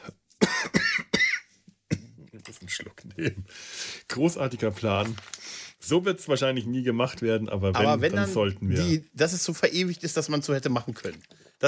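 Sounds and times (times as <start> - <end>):
harsh coughing: 0.0 - 2.4
speech: 2.8 - 5.3, 5.9 - 11.6.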